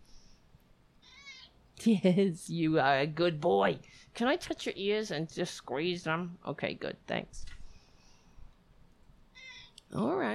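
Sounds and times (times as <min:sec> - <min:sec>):
quiet hum: 0:00.0 - 0:10.3
cat meowing: 0:01.0 - 0:01.6
speech: 0:01.8 - 0:07.6, 0:09.9 - 0:10.3.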